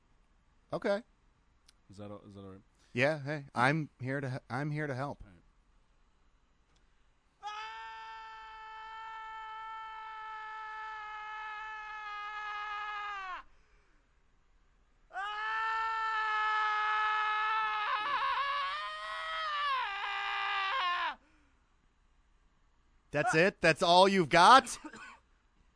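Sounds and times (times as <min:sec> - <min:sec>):
speech: 0:00.7 - 0:01.1, 0:01.9 - 0:05.3, 0:23.1 - 0:25.1
person screaming: 0:07.4 - 0:13.4, 0:15.1 - 0:21.2, 0:23.2 - 0:23.5.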